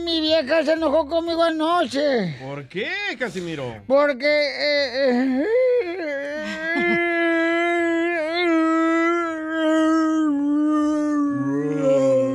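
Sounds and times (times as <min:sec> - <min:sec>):
speech: 0:00.1 - 0:07.0
person faking exaggerated slow-motion crying wail: 0:04.4 - 0:12.3.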